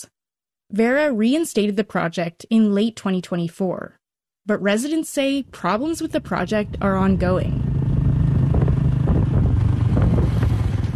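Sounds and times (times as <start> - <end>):
speech: 0.0 - 7.7
rushing wind buffeting the microphone: 5.8 - 10.9
small motorbike engine droning: 6.0 - 10.9.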